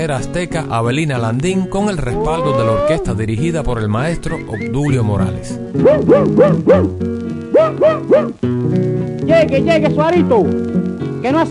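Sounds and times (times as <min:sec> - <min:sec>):
speech: 0:00.0 - 0:11.4
dog yelping and barking: 0:05.8 - 0:08.4.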